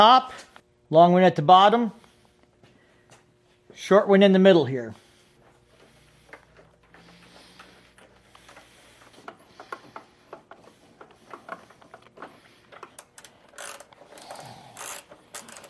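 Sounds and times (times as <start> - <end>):
speech: 0.0 - 2.0, 3.8 - 5.0
ratchet tightening inner and outer motorcycle fairing bolts: 12.8 - 15.6.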